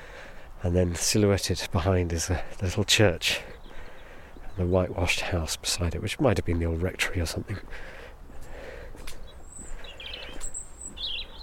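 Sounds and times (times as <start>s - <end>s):
speech: 0.6s - 3.5s, 4.6s - 8.0s
European robin singing: 3.3s - 6.6s, 9.1s - 11.4s.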